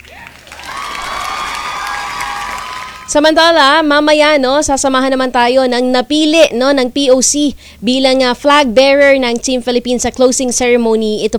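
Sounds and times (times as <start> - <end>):
crowd applauding loudly: 0.0 - 3.5
speech: 3.1 - 11.3.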